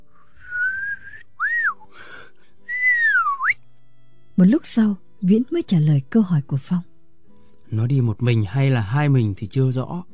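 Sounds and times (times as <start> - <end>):
person whistling bird-like phrase to call a nightingale: 0.4 - 1.8, 2.7 - 3.6
speech: 4.4 - 6.9, 7.7 - 10.1.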